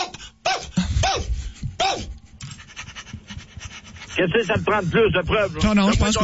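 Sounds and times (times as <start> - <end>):
dog barking: 0.0 - 2.1
dog panting: 0.0 - 6.2
speech: 4.2 - 6.2.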